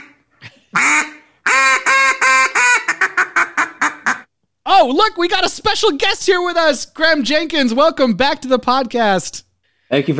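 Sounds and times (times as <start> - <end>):
duck call blasting nasal quacks: 0.8 - 4.3
speech: 4.8 - 10.1.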